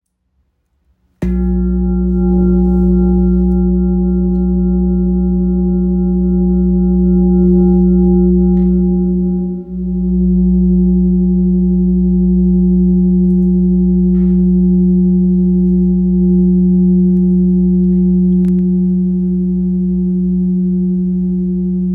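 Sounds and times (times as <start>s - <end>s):
large singing bowl tuned to F sharp: 1.2s - 21.9s.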